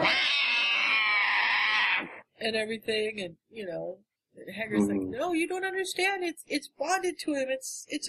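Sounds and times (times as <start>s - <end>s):
kitten crying and mewling: 0.0s - 2.2s
speech: 2.4s - 8.0s.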